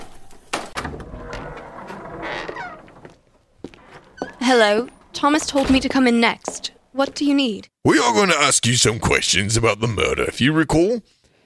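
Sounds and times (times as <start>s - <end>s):
door creaking as it swings: 0.6s - 6.4s
speech: 4.5s - 11.2s.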